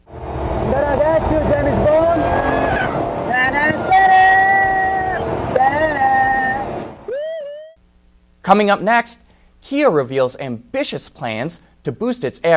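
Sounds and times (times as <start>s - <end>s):
Jaguar supercar engine roaring on a race track: 0.0s - 7.1s
speech: 8.5s - 12.5s.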